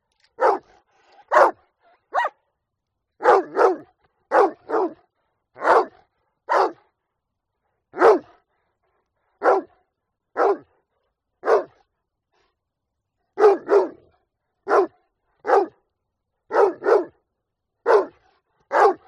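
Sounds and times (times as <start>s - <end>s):
dog giving sharp short barks: 0.4s - 2.4s, 3.2s - 5.0s, 5.6s - 6.9s, 8.0s - 8.4s, 9.4s - 9.8s, 10.4s - 10.7s, 11.4s - 11.8s, 13.4s - 15.8s, 16.5s - 17.2s, 17.8s - 19.0s.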